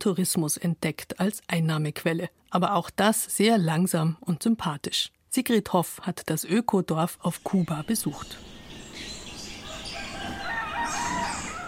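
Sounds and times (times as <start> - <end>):
speech: 0.0 - 8.5
birds chattering: 7.3 - 11.6
roosters crowing at sunrise in the open air: 8.8 - 11.6.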